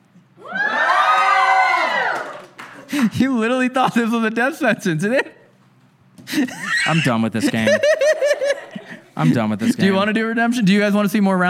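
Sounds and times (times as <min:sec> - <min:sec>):
live audience cheering and shouting: 0:00.4 - 0:02.5
speech: 0:03.0 - 0:05.4, 0:06.3 - 0:08.1, 0:09.2 - 0:11.4
laughter: 0:06.2 - 0:10.2.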